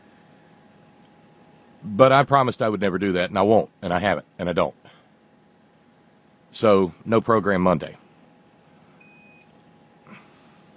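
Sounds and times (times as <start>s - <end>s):
low hum: 0.0s - 10.7s
speech: 1.8s - 4.8s, 6.5s - 8.0s
electronic beep: 9.0s - 9.5s.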